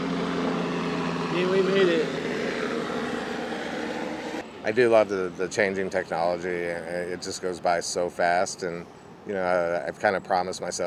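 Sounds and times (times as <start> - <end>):
helicopter engine drone overhead: 0.0 - 7.4
speech: 1.4 - 2.2, 4.7 - 10.8.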